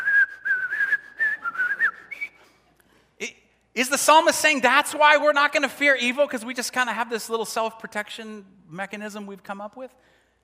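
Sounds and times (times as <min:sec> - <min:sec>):
person whistling a short wavering tune: 0:00.0 - 0:02.6
speech: 0:03.2 - 0:10.2.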